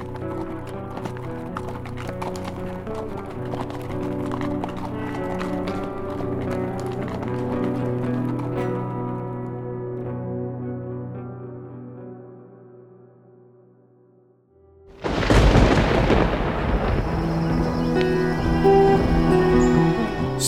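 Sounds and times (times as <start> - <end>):
hoofbeats of a group of horses being ridden away: 0.0 - 9.6, 15.0 - 20.4.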